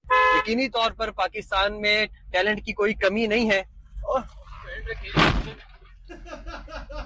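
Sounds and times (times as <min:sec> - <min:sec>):
horn-like honking tone: 0:00.0 - 0:00.5
man talking excitedly in a language other than English: 0:00.4 - 0:05.6
car crashing into a police car: 0:05.1 - 0:05.8
laughter: 0:06.0 - 0:07.0.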